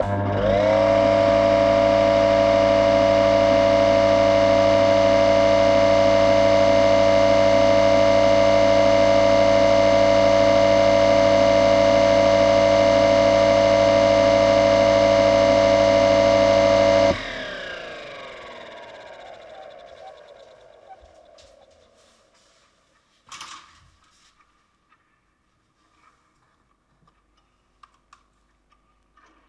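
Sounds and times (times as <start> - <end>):
bathroom extractor fan: 0.0 - 22.9.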